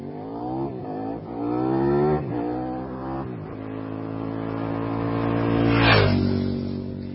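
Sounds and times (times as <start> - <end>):
motorcycle engine revving: 0.0 - 7.1.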